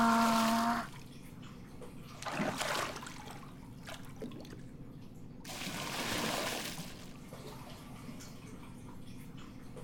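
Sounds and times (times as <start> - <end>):
hot water pouring into a bath: 0.0 - 1.1, 2.2 - 4.5, 5.5 - 8.0.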